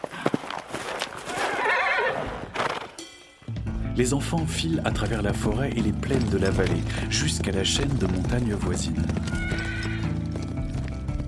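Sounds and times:
pony galloping hoofbeats: 0.0 - 3.0, 4.4 - 11.2
distant horse neighing: 1.3 - 2.9, 9.3 - 10.2
speech: 4.0 - 9.7.

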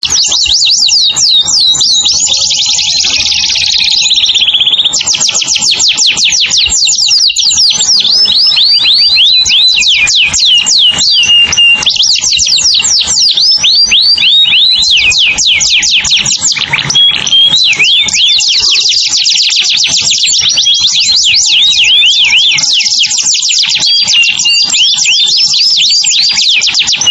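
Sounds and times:
canary singing rapid high trills: 0.0 - 27.0.

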